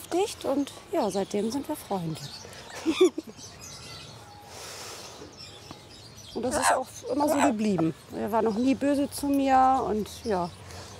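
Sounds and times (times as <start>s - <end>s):
speech: 0.1s - 3.6s, 6.4s - 10.6s
Amazon parrot giving raspy nasal calls and chattering: 6.4s - 8.1s.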